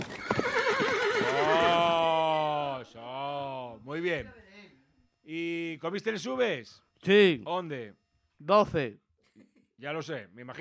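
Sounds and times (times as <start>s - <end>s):
restless stabled horses neighing: 0.0s - 2.7s
speech: 4.1s - 4.4s, 5.3s - 10.6s.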